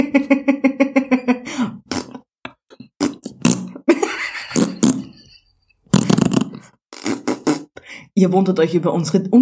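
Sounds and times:
speech: 0.1 - 0.7, 8.2 - 9.4
voices imitating herrings farting with buzzing raspberries: 2.9 - 5.3, 5.9 - 7.7.

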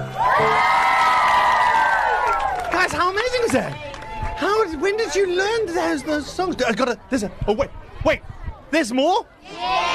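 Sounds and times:
primary school children's choir cheering and squealing: 0.0 - 2.8
speech: 2.9 - 9.9.

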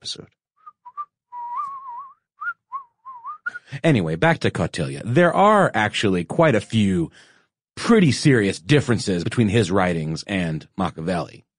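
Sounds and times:
speech: 0.0 - 0.4, 3.7 - 11.5
person whistling a short tune: 0.6 - 3.7.

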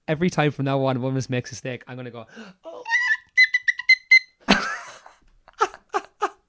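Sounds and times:
speech: 0.1 - 2.8
theme tune played in tin whistle style: 2.9 - 4.4
laughter: 4.5 - 6.4.

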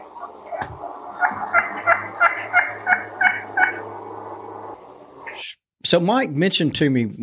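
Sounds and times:
hen Wild Turkey giving a trumpet call of nasal yelping notes: 0.0 - 4.0
low steady hum: 0.0 - 5.5
speech: 5.9 - 7.2.

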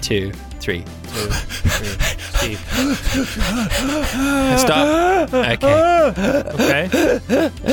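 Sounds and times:
speech: 0.0 - 7.7
very fast shallow breaths during a guided grounding exercise: 1.1 - 4.8
laughter: 1.2 - 7.7.

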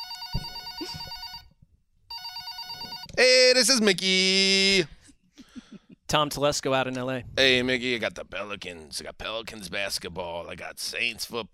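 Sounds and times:
telephone ringing after a call is dialed: 0.0 - 3.2
speech: 3.2 - 5.0, 6.1 - 11.5.

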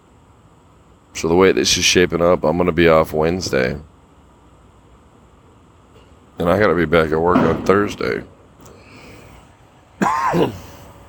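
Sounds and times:
speech: 1.2 - 3.9, 6.4 - 8.3, 10.3 - 10.6
person coughing: 10.0 - 11.0.

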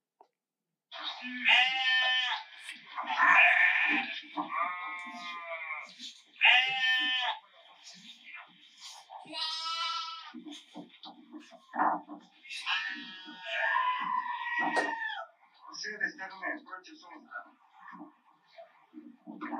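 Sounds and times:
sheep bleating loudly: 1.2 - 7.4, 9.2 - 10.4, 12.5 - 15.3.

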